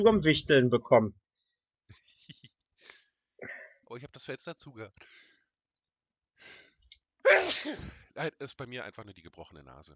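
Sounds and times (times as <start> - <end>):
speech: 0.0 - 1.2, 3.9 - 5.3, 7.3 - 9.9
laughter: 1.9 - 2.6
person sneezing with wheezing trail: 7.2 - 8.0.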